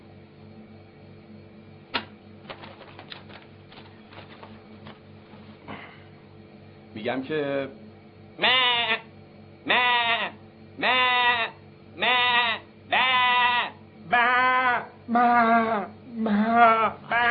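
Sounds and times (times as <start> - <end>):
faint hum: 0.0 - 17.2
speech: 7.0 - 7.8, 8.4 - 8.7
live sheep bleating: 8.4 - 9.1, 9.7 - 17.2.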